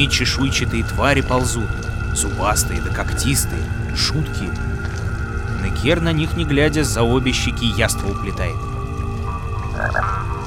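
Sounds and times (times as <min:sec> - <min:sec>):
speech: 0:00.0 - 0:04.8, 0:05.6 - 0:08.7, 0:09.8 - 0:10.3
toad croaking: 0:09.6 - 0:10.4.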